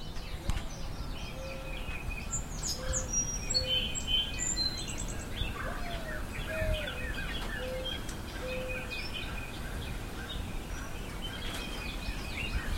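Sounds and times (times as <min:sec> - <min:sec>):
birds chirping: 0:00.0 - 0:12.7
quiet outdoor hiss: 0:00.0 - 0:12.7
mourning dove cooing: 0:00.4 - 0:01.9, 0:02.6 - 0:04.0, 0:04.9 - 0:12.7.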